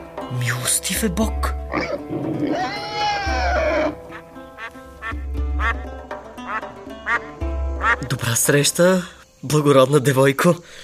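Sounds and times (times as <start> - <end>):
speech: 0.3 - 4.0, 8.0 - 10.8
goose cackling and honking: 1.7 - 8.0.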